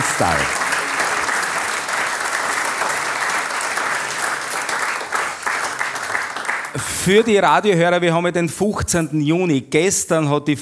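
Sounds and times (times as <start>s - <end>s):
audience applause: 0.0s - 7.6s
speech: 0.2s - 0.6s, 6.8s - 10.6s.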